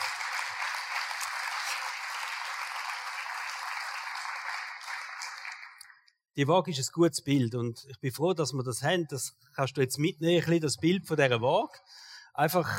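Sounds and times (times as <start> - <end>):
audience applause: 0.0 - 6.0
speech: 6.4 - 12.7.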